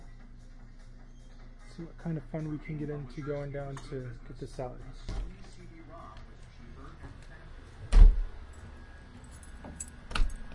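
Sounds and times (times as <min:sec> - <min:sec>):
speech: 0:01.8 - 0:05.2
door slamming shut: 0:07.9 - 0:08.4.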